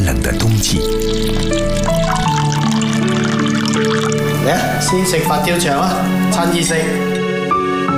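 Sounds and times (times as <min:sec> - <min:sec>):
thick golden broth pouring over a mound of rice: 0:00.1 - 0:07.2
sustained musical tones: 0:00.1 - 0:07.8
speech: 0:00.3 - 0:01.1, 0:04.5 - 0:07.2.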